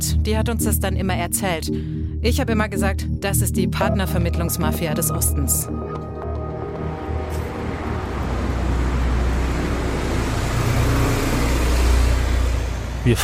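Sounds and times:
speech: 0.0 - 5.9, 13.0 - 13.2
traffic of passing cars and motor vehicles on a busy road: 7.2 - 13.2.

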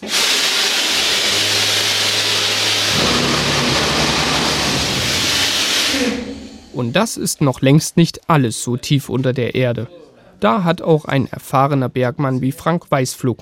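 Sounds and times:
mining drill rig roaring: 0.0 - 7.0
speech: 6.8 - 13.4.

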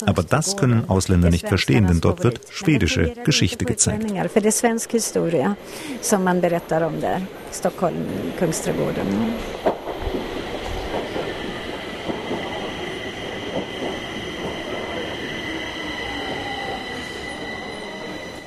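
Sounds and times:
speech: 0.0 - 9.7
metro train rumbling through Kungsträdgården underground station in Stockholm: 0.0 - 18.4
high-pitched metro train wheel squeal: 15.0 - 18.4.

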